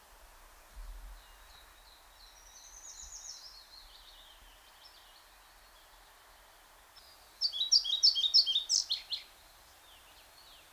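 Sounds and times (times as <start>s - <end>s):
European pied flycatcher Ficedula hypoleuca song: 7.0s - 10.5s.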